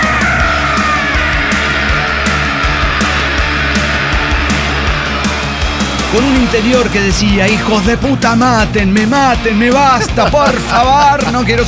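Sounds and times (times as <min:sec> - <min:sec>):
person screaming in terror on a roller coaster: 0:00.0 - 0:06.6
roller coaster rattling rumble: 0:00.0 - 0:10.3
roar of rushing wind: 0:00.5 - 0:08.6
speech: 0:06.1 - 0:11.6.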